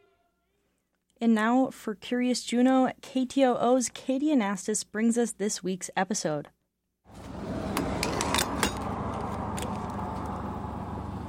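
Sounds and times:
speech: 1.2 - 6.6
fuel pump filling a car's tank at a gas station: 7.1 - 11.2.

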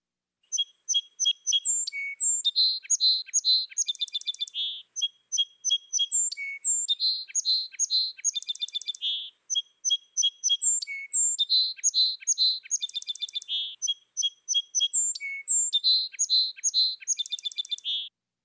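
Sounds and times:
song sparrow singing: 0.4 - 18.1.

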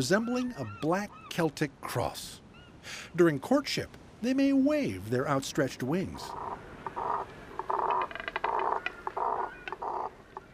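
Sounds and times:
speech: 0.0 - 6.6
double-crested cormorants making guttural grunting croaks at a nesting colony: 6.2 - 10.5.

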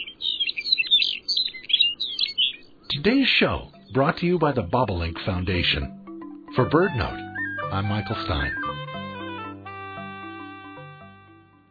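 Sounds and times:
Lapland longspur singing a warble: 0.0 - 6.3, 7.0 - 9.3
speech: 3.0 - 6.0, 6.6 - 8.7.

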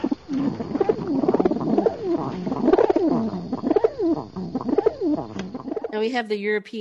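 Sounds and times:
rock pigeon cooing: 0.0 - 6.0
speech: 6.0 - 6.7.

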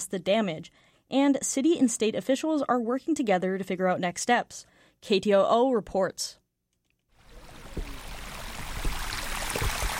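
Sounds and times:
speech: 0.0 - 6.4
water gushing from a drainage tube draining a flooded crawl space: 7.2 - 9.9.

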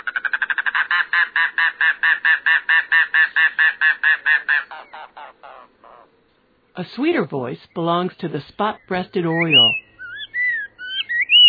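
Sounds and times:
mangrove cuckoo singing: 0.0 - 6.1, 8.7 - 11.4
speech: 6.8 - 9.8.

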